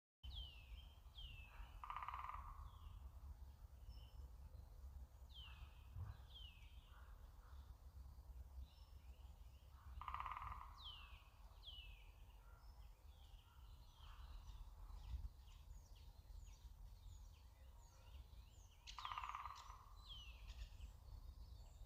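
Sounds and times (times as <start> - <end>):
green woodpecker in nature: 0.3 - 21.8.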